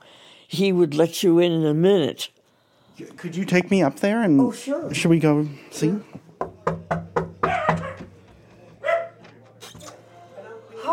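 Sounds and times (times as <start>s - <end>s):
speech: 0.5s - 2.4s, 3.0s - 6.2s
small dog barking in sharp high yaps: 7.4s - 8.1s, 8.8s - 9.2s.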